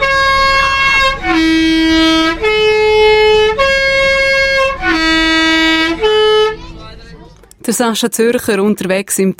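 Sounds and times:
vehicle horn playing three-note melody before a tight bend: 0:00.0 - 0:06.7
speech: 0:07.7 - 0:09.3.

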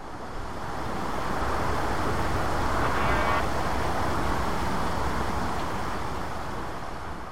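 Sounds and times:
traffic roar on a motorway through farmland: 0:00.0 - 0:07.3.

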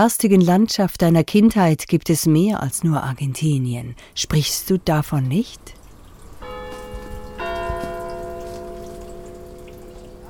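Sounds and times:
speech: 0:00.0 - 0:05.8
village church bell ringing in Ticino: 0:06.4 - 0:10.2.

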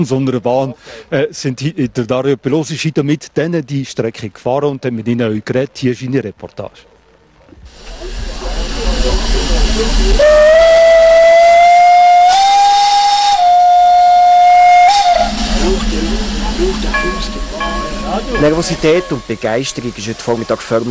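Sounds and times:
speech: 0:00.0 - 0:06.9, 0:18.2 - 0:20.9
steam locomotive whistle blast departing toward the Furka Pass summit: 0:07.8 - 0:20.9.

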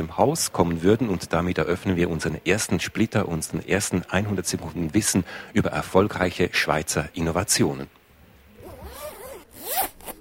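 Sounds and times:
speech: 0:00.0 - 0:08.0
zipper pulled open and shut: 0:08.6 - 0:10.1.

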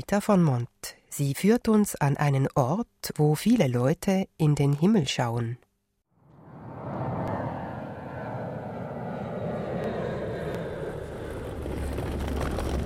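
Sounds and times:
speech: 0:00.0 - 0:05.6
aircraft engine roar at Zurich-Kloten airport: 0:06.2 - 0:12.8.

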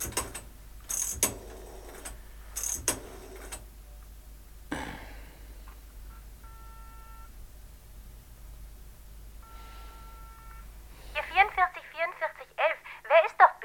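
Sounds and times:
telephone dialing clicks and whirring in a phone booth: 0:00.0 - 0:03.7
telephone ringing tones on the line: 0:06.1 - 0:07.3, 0:09.4 - 0:10.7
person talking: 0:11.2 - 0:13.6.

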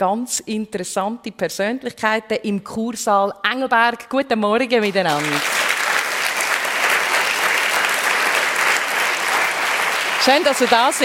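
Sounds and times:
speech: 0:00.0 - 0:05.7, 0:10.3 - 0:11.0
sizeable audience applauding in a hall: 0:04.9 - 0:11.0.

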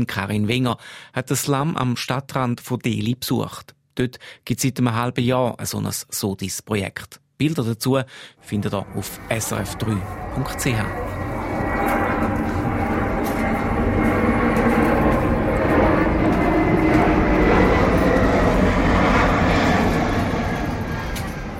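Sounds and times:
speech: 0:00.0 - 0:11.2
airplane roaring low overhead: 0:08.4 - 0:21.5.

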